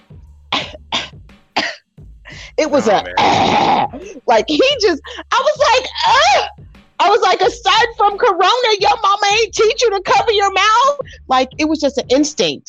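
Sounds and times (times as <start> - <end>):
voice imitating a man coughing inside a gas station: 0.6 - 4.3
laughter: 2.3 - 8.2
strained groaning vocal sounds: 2.5 - 4.2
speech: 2.6 - 12.6.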